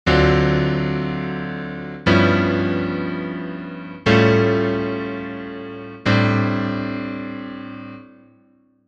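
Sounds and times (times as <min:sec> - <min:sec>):
complex jazz chords on piano: 0:00.1 - 0:08.1.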